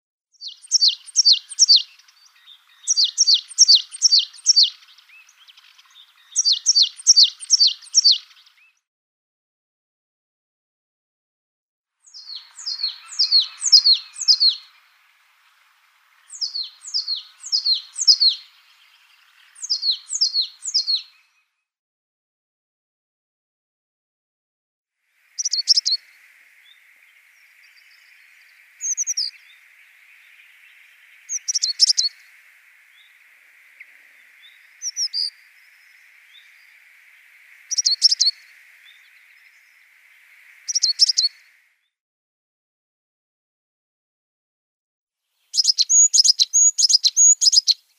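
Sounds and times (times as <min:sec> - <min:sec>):
African Blue Tit ultramarinus song: 0:00.4 - 0:08.8, 0:12.0 - 0:21.4, 0:25.3 - 0:41.6, 0:45.4 - 0:47.9.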